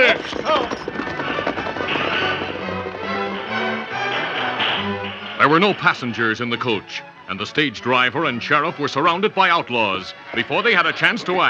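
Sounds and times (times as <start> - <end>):
horses galloping hoofbeats: 0.0 - 11.4
sustained low musical tones: 2.5 - 11.4
speech: 5.5 - 11.4.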